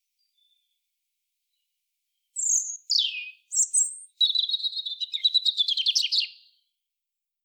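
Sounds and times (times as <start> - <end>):
European robin song with whistles and rattling trill: 0.2 - 0.8, 1.5 - 6.7.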